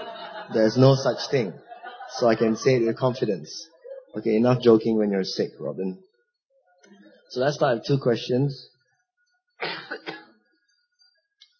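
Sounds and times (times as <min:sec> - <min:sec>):
laughter: 0:00.0 - 0:04.8
speech: 0:00.5 - 0:06.1, 0:07.3 - 0:08.7
harsh double-pulsed cough: 0:09.6 - 0:10.5.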